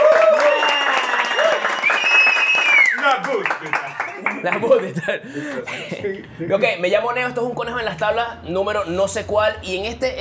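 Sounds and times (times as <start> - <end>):
cheers and whistles from the crowd: 0.0 - 3.2
crowd applauding with dense clapping: 0.0 - 5.6
speech: 4.4 - 10.1.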